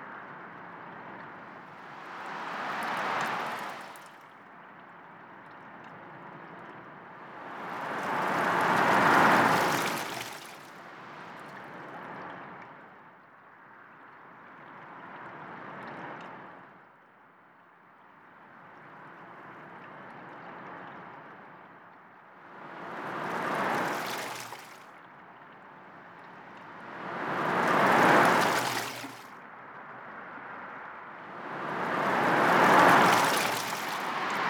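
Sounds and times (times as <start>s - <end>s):
waves: 0.0s - 4.4s, 7.1s - 12.4s, 22.4s - 29.5s, 30.2s - 34.4s.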